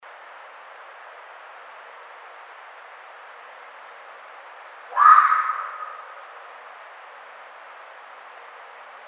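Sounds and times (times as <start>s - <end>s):
red fox giving hoarse drawn-out cry: 4.9s - 6.2s.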